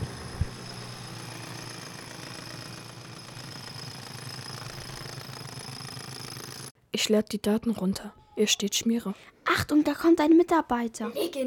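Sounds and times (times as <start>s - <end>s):
drill running with rattling grind: 0.1s - 6.7s
speech: 7.0s - 11.4s.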